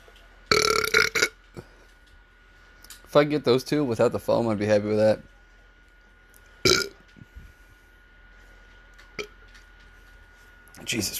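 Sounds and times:
low hum: 0.0 - 11.1
loud belch: 0.5 - 1.4, 6.7 - 7.0
speech: 3.1 - 5.3, 11.0 - 11.1.

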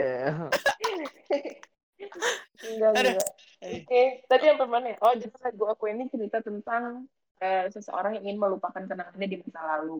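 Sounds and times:
speech: 0.0 - 0.7, 2.2 - 9.9
person sneezing: 0.5 - 1.1, 2.2 - 3.8
laughter: 0.5 - 1.6, 2.2 - 3.3
person sniffing: 0.6 - 1.1, 2.2 - 3.3
brief voiced sound: 2.2 - 3.8.

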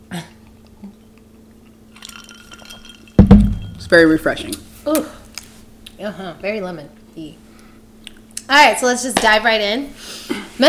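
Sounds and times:
glasses of sidecar cocktails clinking in a toast: 1.9 - 4.1
soft knock of glassware: 2.8 - 3.9
speech: 3.9 - 5.2, 6.0 - 7.4, 8.5 - 10.6.

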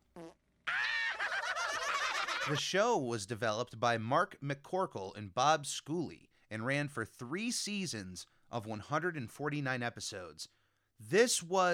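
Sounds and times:
croaking burp: 0.0 - 0.4
speech: 0.2 - 0.4, 2.5 - 11.7
laughter: 0.7 - 2.6.

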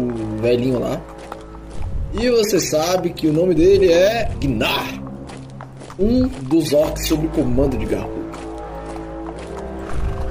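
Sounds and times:
horse hooves clopping: 0.0 - 10.2
speech: 0.4 - 1.3, 2.1 - 5.0, 6.0 - 8.2.

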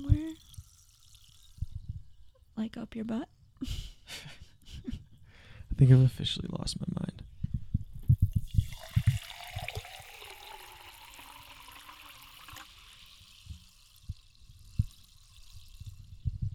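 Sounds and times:
liquid poured into a glass for a drink: 0.0 - 1.9, 8.3 - 16.4
speech: 2.6 - 4.3, 5.8 - 7.0.

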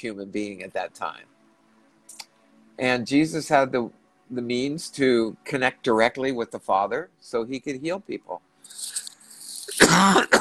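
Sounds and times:
speech: 0.0 - 1.4, 2.8 - 9.0, 9.7 - 10.3
person coughing harshly: 9.6 - 10.3.

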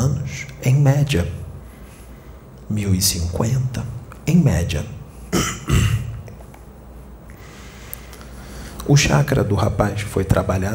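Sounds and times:
speech: 0.6 - 1.4, 2.7 - 6.0, 8.9 - 10.7
young man clearing his throat: 5.3 - 6.2.

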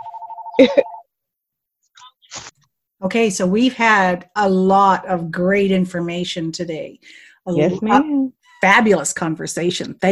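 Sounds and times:
phone ringing with electronic warbling trill: 0.0 - 1.1
speech: 0.6 - 1.0, 3.0 - 10.1.

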